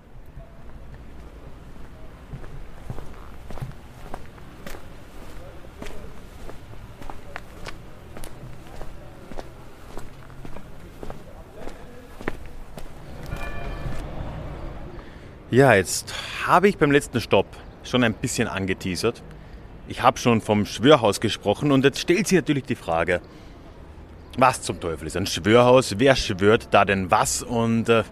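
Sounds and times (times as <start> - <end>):
footsteps walking through town streets: 0.6 - 14.0
speech: 15.6 - 23.5, 24.4 - 28.1.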